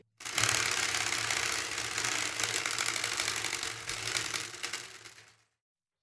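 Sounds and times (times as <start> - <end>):
prize wheel spinning and clicking in a game segment: 0.2 - 5.5.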